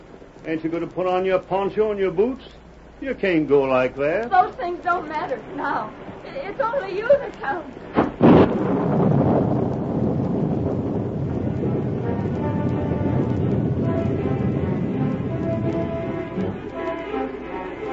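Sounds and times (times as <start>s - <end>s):
deep thunder rolling: 0.0s - 17.9s
rain: 0.0s - 17.9s
wind: 0.0s - 17.9s
speech: 0.4s - 8.0s
faint sustained musical tones: 11.5s - 17.9s.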